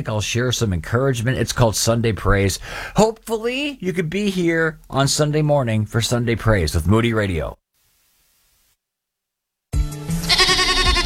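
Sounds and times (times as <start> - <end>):
speech: 0.0 - 7.6
goat bleating: 10.2 - 11.0.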